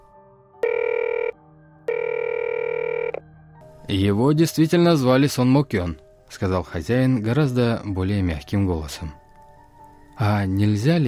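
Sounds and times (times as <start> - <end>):
telephone ringing in long electronic bursts: 0.6 - 3.2
speech: 3.9 - 9.2, 10.2 - 11.0.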